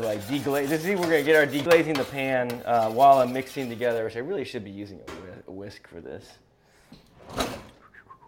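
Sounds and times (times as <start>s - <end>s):
speech: 0.0s - 6.4s
kitchen drawer sliding open with a scraping pull: 7.1s - 7.8s.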